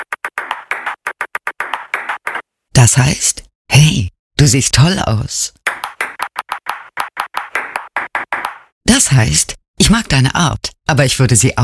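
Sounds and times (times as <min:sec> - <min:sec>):
table tennis ball tapping and rattling in a Morse code pattern: 0:00.0 - 0:02.4, 0:05.7 - 0:08.7
speech: 0:02.8 - 0:05.6, 0:09.1 - 0:11.6.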